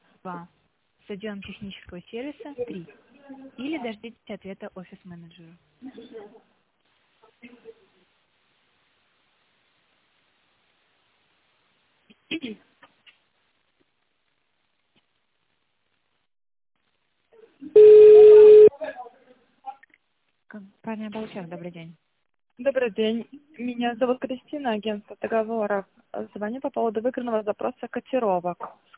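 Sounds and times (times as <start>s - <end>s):
speech: 0.2s - 6.5s, 7.4s - 7.8s, 12.3s - 12.7s, 20.5s - 22.0s, 22.6s - 28.9s
telephone keypad tone dialing an extension on an office phone menu: 17.8s - 18.7s.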